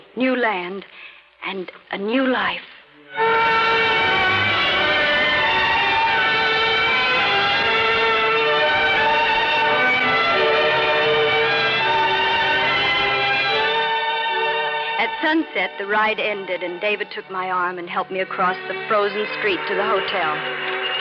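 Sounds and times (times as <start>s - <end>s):
speech: 0.2s - 4.0s, 15.2s - 20.7s
train running along the rails: 3.2s - 13.9s
sustained whining whistle-like tones: 3.2s - 15.0s.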